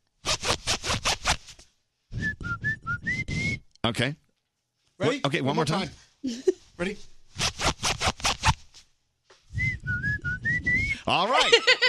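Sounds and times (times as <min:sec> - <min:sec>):
zipper being zipped back and forth: 0:00.2 - 0:01.6, 0:07.4 - 0:08.7
short high whistle-like tones: 0:02.1 - 0:03.7, 0:09.5 - 0:11.1
speech: 0:03.8 - 0:04.2, 0:05.0 - 0:07.1, 0:11.1 - 0:11.8.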